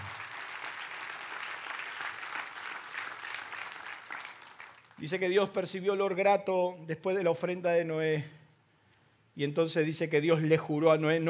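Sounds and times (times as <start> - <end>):
audience applauding: 0.0 - 5.0
speech: 5.0 - 8.4, 9.4 - 11.2.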